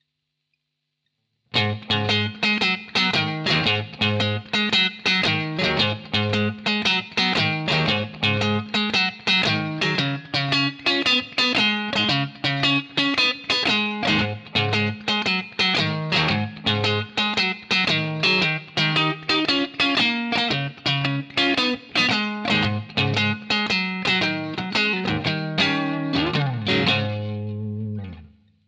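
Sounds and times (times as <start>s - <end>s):
12-bar blues guitar shuffle riff: 1.5s - 28.3s.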